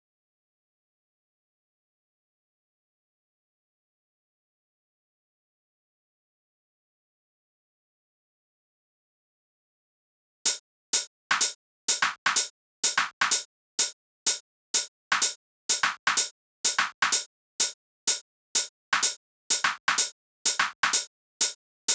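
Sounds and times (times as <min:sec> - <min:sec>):
future house drum loop: 0:10.5 - 0:21.9.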